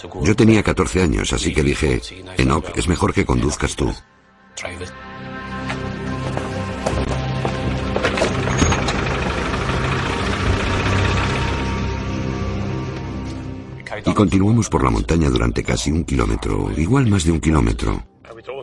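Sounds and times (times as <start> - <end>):
speech: 0.0 - 5.3, 14.0 - 18.6
Land Rover engine droning while climbing a mountain track in Berguín: 6.0 - 14.0
Land Rover bodywork rattling, creaking and knocking on a mountain track: 6.2 - 10.7.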